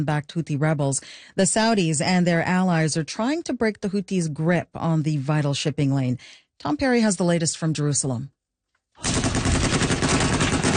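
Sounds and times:
speech: 0.0 - 8.4, 9.0 - 9.3
heavy machine guns mounted on pickup trucks firing during fighting in Yemen: 9.0 - 10.7.

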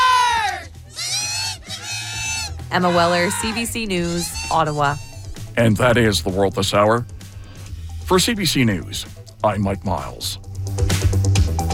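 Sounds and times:
crowd roaring and screaming in an ice hockey arena in Ottawa during a playoff game: 0.0 - 4.7
speech: 2.7 - 7.2, 8.1 - 10.9.

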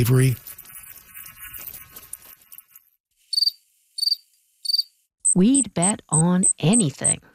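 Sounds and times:
speech: 0.0 - 0.4, 5.4 - 7.3
crickets chirping: 3.3 - 5.0.

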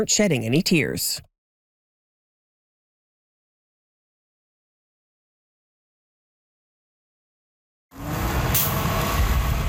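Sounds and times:
speech: 0.0 - 1.3
broadband road noise: 7.9 - 9.6
double-decker bus engine rumbling: 7.9 - 9.6.

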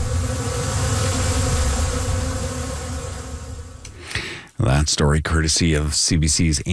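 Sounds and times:
many honeybees buzzing inside a hive: 0.0 - 3.8
speech: 4.6 - 6.7.

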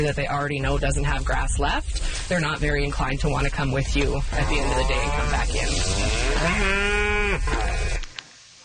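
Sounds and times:
speech: 0.0 - 7.6
outdoor noise: 0.0 - 8.6
cow mooing: 4.3 - 8.1.

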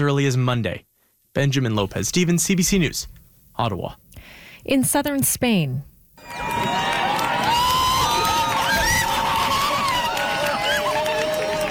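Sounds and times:
speech: 0.0 - 6.8
large outdoor crowd cheering and shouting during a total solar eclipse: 6.2 - 11.7.

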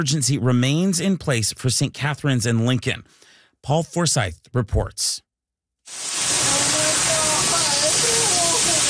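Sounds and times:
speech: 0.0 - 5.2, 5.9 - 6.4
rushing floodwater: 5.9 - 8.8.

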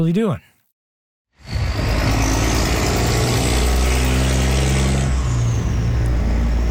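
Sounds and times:
speech: 0.0 - 0.5
heavy road traffic with tire and motor noise: 1.4 - 6.6
truck engines droning and shifting pitch: 1.5 - 6.6.

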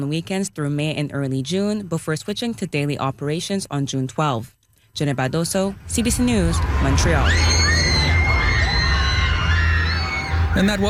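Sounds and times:
speech: 0.0 - 7.8, 10.6 - 10.8
steady rumble of an amusement-park roller coaster ride: 5.7 - 10.8
riders screaming on an amusement-park roller coaster: 6.3 - 10.8.

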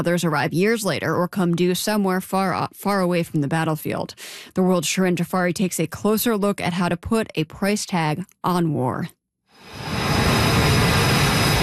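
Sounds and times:
speech: 0.0 - 9.9
fighter jet engine roar taking off from an aircraft carrier deck: 9.6 - 11.6.

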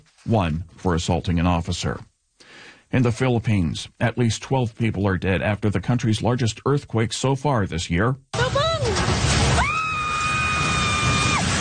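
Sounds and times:
speech: 0.2 - 2.1, 2.9 - 8.4
rough roar of crashing from collapsing building: 8.8 - 11.5
falling cry: 9.4 - 11.5
shrill scream of horror as building collapses: 9.5 - 11.5.

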